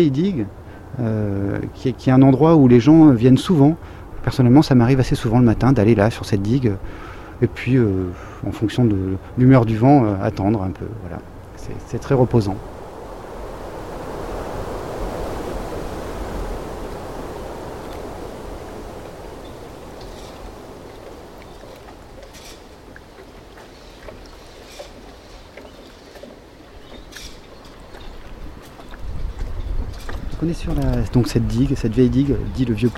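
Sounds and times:
speech: 0.0 - 12.7, 30.5 - 32.9
ocean swell rolling onto mangrove beside an old harbour dike in Cayenne: 11.0 - 29.1.

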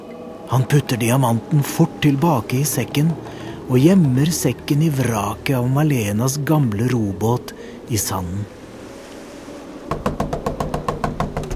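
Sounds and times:
speech: 0.5 - 8.6
boy knocking hard on a house door: 9.9 - 11.5.

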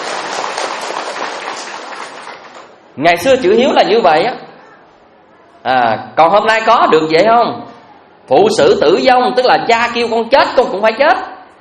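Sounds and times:
audience applauding at a Buddhist talk: 0.0 - 2.7
speech: 3.0 - 4.4, 5.6 - 7.7, 8.3 - 11.3.

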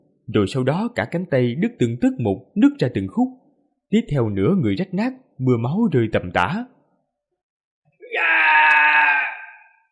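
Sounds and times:
speech: 0.3 - 6.7
man screaming in agony: 8.0 - 9.8.

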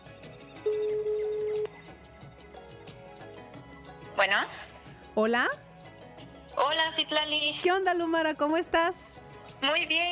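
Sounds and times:
ringback tone on an outgoing telephone call: 0.6 - 1.7
speech: 4.2 - 5.6, 6.6 - 9.0, 9.6 - 10.1.

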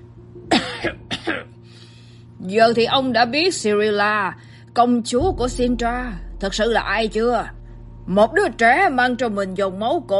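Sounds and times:
faint hum: 0.0 - 10.1
man coughing: 0.5 - 1.6
speech: 0.8 - 1.5, 2.4 - 10.1.

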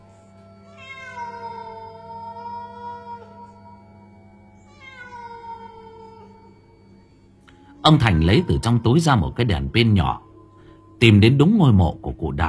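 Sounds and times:
black cat meowing: 0.7 - 3.5, 4.6 - 6.6, 7.9 - 9.7
low hum: 1.5 - 12.4
speech: 7.8 - 10.3, 11.0 - 12.4.

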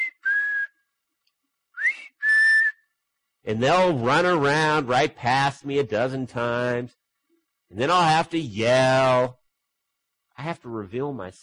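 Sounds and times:
person whistling: 0.0 - 0.9, 1.7 - 3.0
speech: 3.4 - 7.0, 7.7 - 9.4, 10.4 - 11.4.

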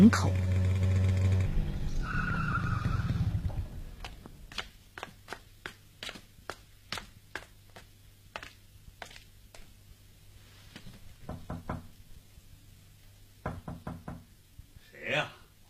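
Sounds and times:
motorcycle speeding through quiet late-night streets: 0.0 - 4.3
motorcycle tires squealing: 0.8 - 3.8.

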